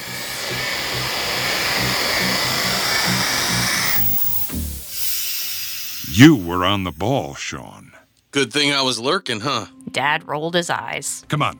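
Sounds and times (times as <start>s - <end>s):
rhythmic low thumps: 0.0s - 4.9s
laboratory decontamination system blasting air: 0.0s - 7.2s
speech: 6.2s - 11.5s.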